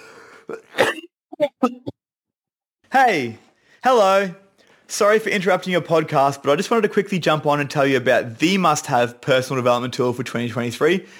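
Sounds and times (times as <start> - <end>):
single throaty cough: 0.5 - 1.9
speech: 3.0 - 11.1.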